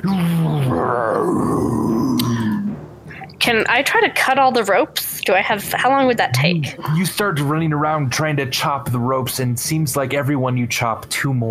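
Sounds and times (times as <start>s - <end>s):
speech: 0.0s - 1.4s, 3.5s - 11.5s
man imitating a sea monster's roar: 0.0s - 2.7s.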